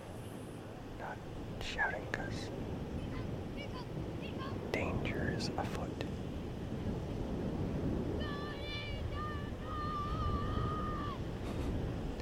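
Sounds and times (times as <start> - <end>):
steady ocean surf on a beach: 0.0 - 12.2
speech: 1.0 - 3.0, 3.6 - 6.1
thin wavering tonal cry: 8.2 - 11.2.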